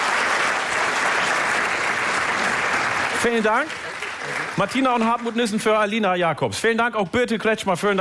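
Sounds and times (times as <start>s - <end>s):
large indoor theater audience applause: 0.0s - 5.9s
speech: 3.2s - 7.9s.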